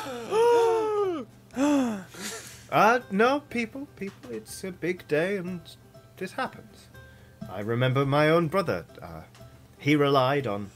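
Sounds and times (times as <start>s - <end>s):
person gasping theatrically: 0.0s - 2.7s
speech: 2.7s - 6.9s, 7.5s - 10.7s.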